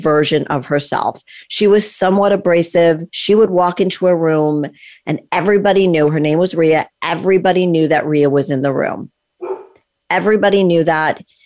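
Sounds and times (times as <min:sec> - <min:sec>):
speech: 0:00.0 - 0:09.2, 0:10.1 - 0:11.4
dog barking: 0:09.4 - 0:09.8.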